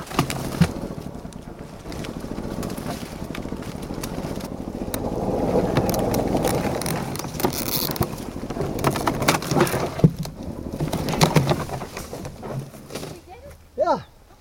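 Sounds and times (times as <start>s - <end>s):
golf cart motor whirring: 0.4s - 11.8s
tree stump dragging and scraping behind golf cart: 3.5s - 9.0s.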